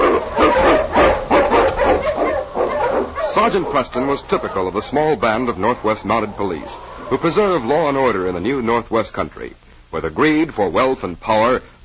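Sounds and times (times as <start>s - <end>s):
pack of husky sled dogs barking excitedly: 0.0s - 8.2s
speech: 3.4s - 11.8s.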